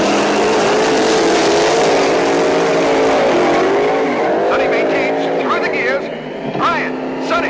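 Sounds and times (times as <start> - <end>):
drag race car engines roaring, one an Oldsmobile, launching at the green light: 0.0 - 7.4.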